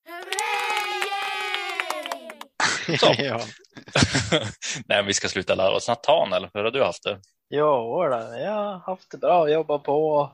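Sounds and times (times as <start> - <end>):
crowd cheering: 0.0 - 2.6
applause: 0.0 - 2.7
laughter: 2.1 - 4.6
speech: 2.9 - 10.3.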